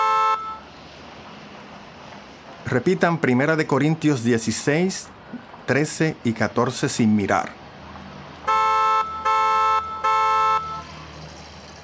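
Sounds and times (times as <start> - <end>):
car horn blasts: 0.0 - 0.7, 8.5 - 10.8
low rumble of street noise from moving traffic: 0.0 - 11.8
speech: 2.7 - 7.6.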